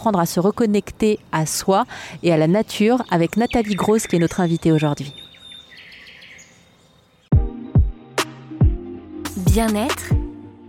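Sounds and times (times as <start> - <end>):
speech: 0.0 - 5.2, 9.5 - 10.2
faint outdoor birdsong in spring: 0.0 - 7.7.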